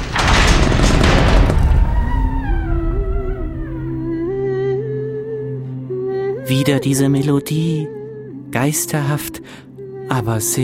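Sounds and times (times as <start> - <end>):
heavy castle door thud: 0.0 - 4.8
speech: 6.5 - 10.6.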